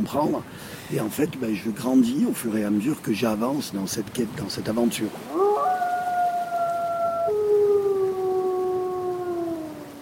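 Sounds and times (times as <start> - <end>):
speech: 0.0 - 5.4
pack of wolves howling: 5.3 - 9.9.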